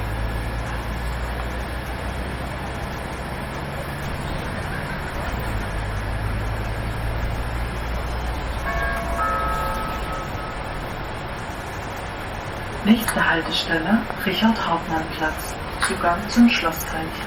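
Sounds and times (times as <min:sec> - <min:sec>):
engine and rolling rumble inside a moving public transport vehicle: 0:00.0 - 0:17.2
high tonal whine or squeal: 0:04.0 - 0:17.0
speech: 0:12.9 - 0:17.2.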